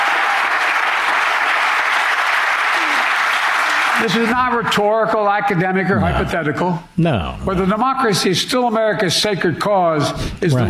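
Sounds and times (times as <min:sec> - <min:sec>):
large audience applause: 0:00.0 - 0:04.3
speech: 0:04.0 - 0:10.6.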